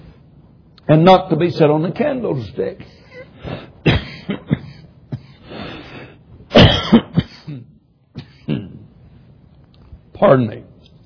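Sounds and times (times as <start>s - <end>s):
speech: 0.9s - 3.6s, 10.2s - 10.7s
harsh coughing fit: 3.0s - 8.9s
raspy breaths: 5.2s - 6.3s.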